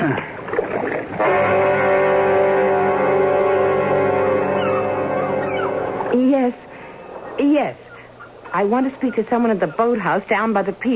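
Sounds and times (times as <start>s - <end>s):
outboard motor droning steadily: 0.1s - 6.3s
speech: 8.6s - 10.9s.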